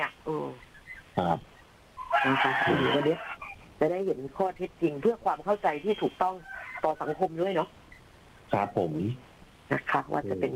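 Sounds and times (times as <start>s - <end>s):
speech: 1.2s - 1.5s, 2.2s - 7.8s, 8.5s - 10.5s
rooster crowing: 2.0s - 3.6s, 6.3s - 7.5s.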